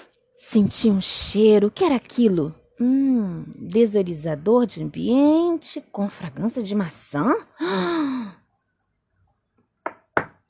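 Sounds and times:
speech: 0.5s - 8.4s
firm knocks on a wooden door: 9.8s - 10.4s.

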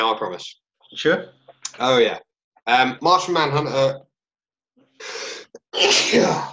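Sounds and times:
speech: 0.0s - 4.1s, 5.0s - 6.5s
person sneezing: 5.0s - 6.5s.

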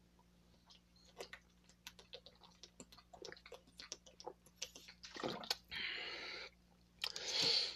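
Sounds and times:
breathy gulps and swallows: 0.6s - 5.8s
person drinking water in gulps: 0.6s - 7.7s.

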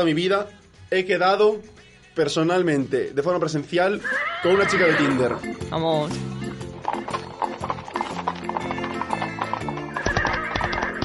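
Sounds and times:
speech: 0.0s - 7.2s
horse neighing: 3.9s - 5.5s, 7.4s - 11.0s
galloping horse hooves clip-clopping: 6.4s - 11.0s.

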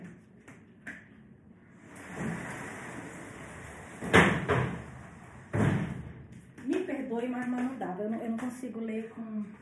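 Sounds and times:
door inside a house shutting with solid thuds: 3.8s - 6.2s
speech: 7.2s - 9.6s.

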